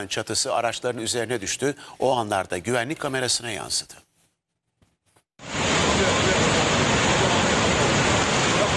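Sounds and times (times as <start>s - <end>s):
speech: 0.0s - 4.0s
rushing floodwater of an overflowing stream: 5.4s - 8.7s.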